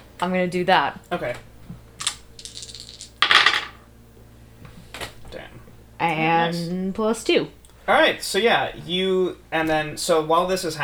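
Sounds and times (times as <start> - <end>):
speech: 0.2 - 1.5, 6.0 - 10.8
dice clattering across a hard tabletop in a game: 2.0 - 3.8.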